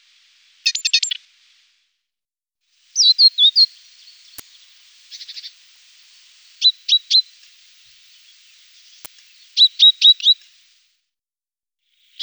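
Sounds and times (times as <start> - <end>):
great tit song of clear whistled notes: 0.0 - 1.2, 2.9 - 10.8.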